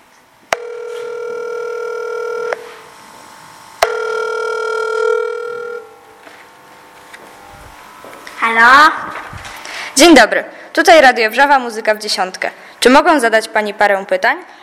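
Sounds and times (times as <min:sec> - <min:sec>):
telephone ring tones as a radio station calls a listener: 0:00.5 - 0:02.8, 0:03.8 - 0:06.2
speech: 0:08.5 - 0:09.2, 0:10.0 - 0:14.6.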